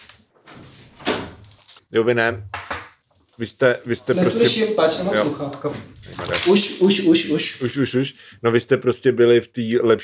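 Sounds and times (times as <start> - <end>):
door swinging and shutting with a firm thud: 1.0 - 1.4
speech: 1.9 - 2.6, 3.4 - 10.0.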